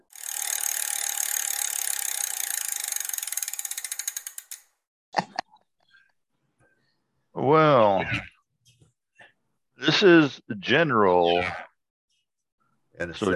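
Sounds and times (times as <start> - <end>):
trivia prize wheel spinning with ratcheting clicks: 0.0 - 4.7
speech: 7.4 - 8.3, 9.9 - 11.6, 13.0 - 13.3.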